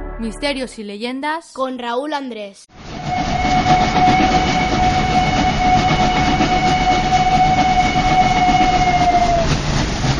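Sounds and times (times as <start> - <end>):
speech: 0.2 - 2.9
train pulling into a station at the end of the line: 2.7 - 10.1.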